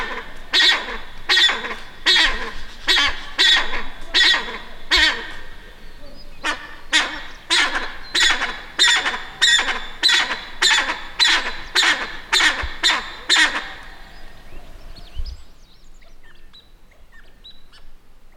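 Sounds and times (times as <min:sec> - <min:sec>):
blue eared pheasant Crossoptilon auritum squawking: 0:00.0 - 0:15.2.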